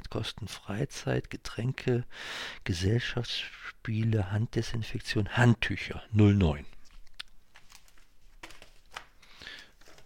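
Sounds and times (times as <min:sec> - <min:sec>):
speech: 0:00.1 - 0:06.7
pages of paper turning: 0:06.8 - 0:10.0
paper rustling and crinkling: 0:06.8 - 0:10.0.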